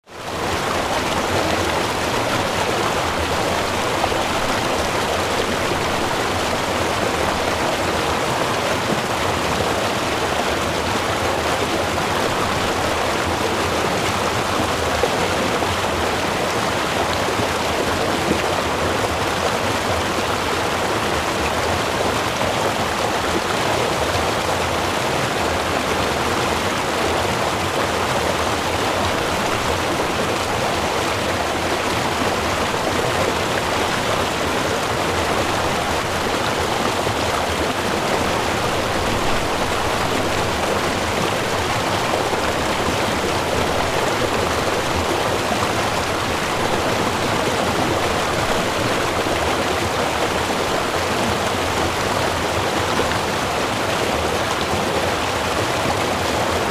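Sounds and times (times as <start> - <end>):
river: 0.0 - 56.6.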